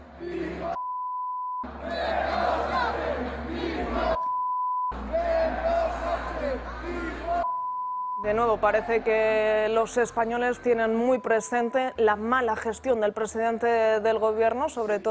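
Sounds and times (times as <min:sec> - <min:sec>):
large crowd chanting at a sports event: 0:00.0 - 0:00.8, 0:01.6 - 0:04.3, 0:04.9 - 0:07.5, 0:08.3 - 0:10.1
steady high bleep tone: 0:00.8 - 0:01.7, 0:04.2 - 0:05.0, 0:07.4 - 0:08.3
speech: 0:08.2 - 0:15.0.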